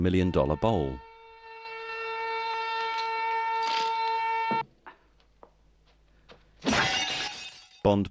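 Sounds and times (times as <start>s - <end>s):
speech: 0.0s - 1.1s, 7.8s - 8.0s
steady ringing alarm-like tone: 0.0s - 4.6s
glass display case shattering as a man is shoved into it: 6.6s - 7.9s.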